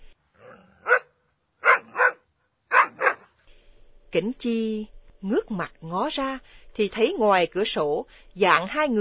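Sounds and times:
black dog barking loudly in a house at night: 0.8s - 3.3s
speech: 4.1s - 9.0s.

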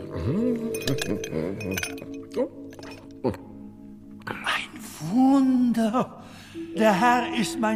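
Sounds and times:
speech: 0.1s - 3.5s, 5.0s - 7.7s
small ice cubes clinking into a glass: 0.8s - 3.1s.

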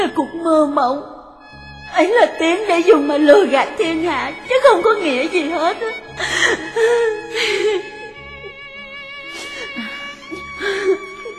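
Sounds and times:
speech: 0.1s - 1.2s, 1.9s - 7.9s, 10.6s - 11.1s
woman sobbing from hurt and resentment: 5.5s - 11.3s.

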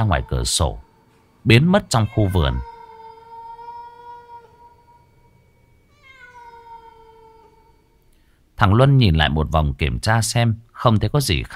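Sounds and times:
speech: 0.0s - 2.7s, 8.6s - 11.5s
cat meowing: 1.7s - 5.2s, 5.9s - 7.9s.

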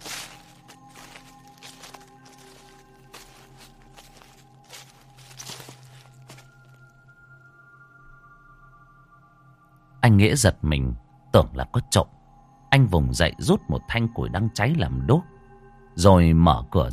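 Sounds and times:
rustling footsteps outside the door of a riverside hut at night: 0.0s - 6.7s
speech: 10.1s - 15.3s, 16.0s - 16.9s.

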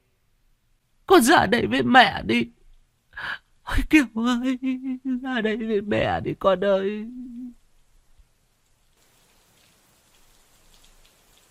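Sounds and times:
speech: 1.1s - 2.6s, 3.2s - 7.4s
rain falling steadily: 5.6s - 11.4s.

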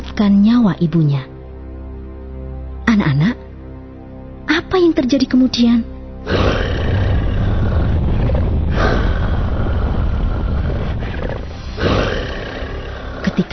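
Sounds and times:
speech: 0.2s - 1.3s, 2.9s - 3.4s, 4.5s - 6.7s
giant snake rumbling and roaring: 6.3s - 13.5s.

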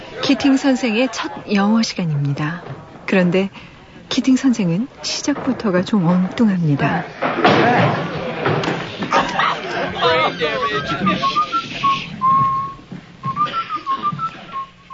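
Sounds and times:
laughter: 0.0s - 2.5s, 7.6s - 12.4s, 13.4s - 14.6s
murmur of voices: 0.0s - 12.8s
speech: 0.2s - 9.4s
man in shirtsleeves whistling a classical overture while walking into a classroom: 10.6s - 14.9s.

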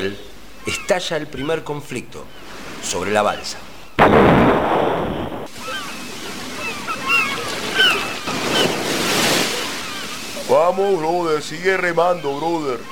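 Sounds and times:
speech: 0.0s - 5.2s, 10.5s - 12.9s
sea waves surging around a raft on open water: 2.0s - 12.9s
gusting wind on open water: 3.7s - 10.4s.

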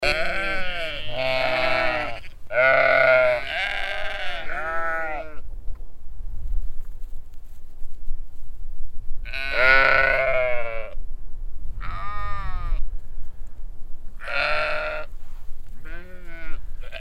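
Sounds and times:
large sheep flock bleating on a windy hill pasture: 0.0s - 5.4s, 9.3s - 11.0s, 14.2s - 15.1s, 15.8s - 16.9s
constant low wind noise on a hill: 0.0s - 16.9s.

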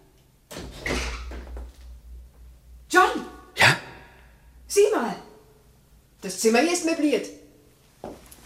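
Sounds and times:
door scraping open in an unfinished house: 0.5s - 1.7s
speech: 6.2s - 7.4s.

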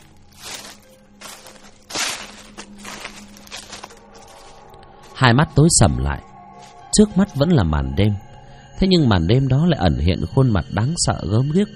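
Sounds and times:
rustling footsteps crunching through dry leaves at night: 0.0s - 4.8s
speech: 5.2s - 6.3s, 7.0s - 11.7s.

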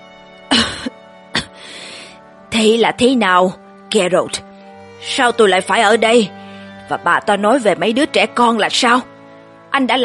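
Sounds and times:
person coughing: 0.5s - 1.6s
speech: 2.6s - 9.1s, 9.8s - 10.0s.

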